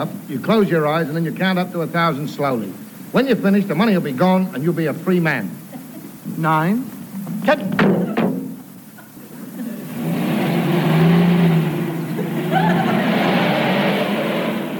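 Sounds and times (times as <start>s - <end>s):
speech: 0.0s - 5.6s, 6.4s - 8.2s
laughter: 5.7s - 6.3s, 7.2s - 10.2s, 12.0s - 13.8s
car engine revving and accelerating away: 9.9s - 14.7s.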